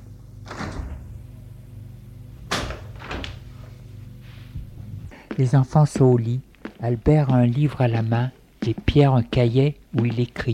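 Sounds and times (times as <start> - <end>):
low steady hum: 0.0 - 10.5
bedroom door opening as someone enters: 0.4 - 1.4, 2.4 - 3.7
speech: 5.4 - 10.5.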